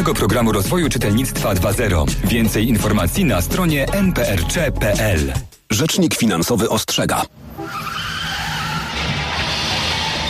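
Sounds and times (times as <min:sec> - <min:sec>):
speech: 0:00.0 - 0:07.9
car tyres skidding and squealing in a road accident: 0:07.4 - 0:10.2.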